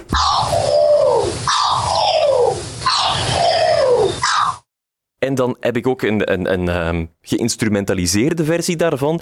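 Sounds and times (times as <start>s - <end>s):
corvid harsh descending contact calls: 0.0s - 4.7s
speech: 5.2s - 9.2s.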